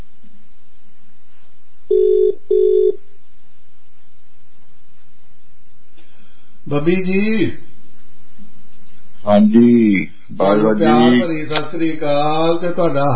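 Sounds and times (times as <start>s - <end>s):
ringing tone of an outgoing telephone call: 1.9s - 3.0s
speech: 6.7s - 7.7s, 9.2s - 13.1s.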